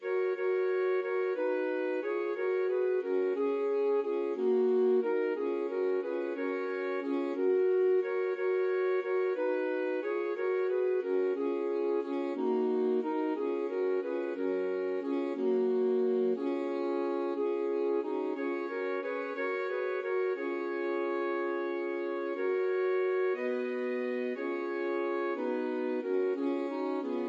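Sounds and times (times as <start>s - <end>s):
saxophone quartet playing a carol: 0.0s - 27.2s.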